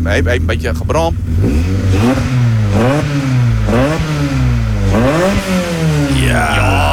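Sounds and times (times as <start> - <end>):
speech: 0.0 - 3.8
200 horsepower car engine revving: 0.0 - 6.9.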